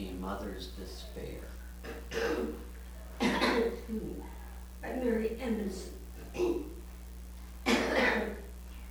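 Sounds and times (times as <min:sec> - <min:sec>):
speech: 0:00.2 - 0:02.7, 0:03.6 - 0:06.7
rough coughs: 0:01.8 - 0:02.6, 0:03.2 - 0:03.8, 0:06.3 - 0:06.8, 0:07.6 - 0:08.4.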